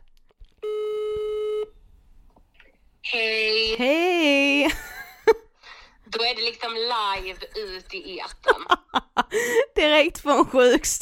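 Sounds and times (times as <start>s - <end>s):
faint noise: 0.0s - 11.0s
electronic ringback tone of an outgoing phone call: 0.6s - 1.7s
speech: 3.0s - 4.0s, 6.6s - 11.0s
laughter: 7.2s - 9.6s.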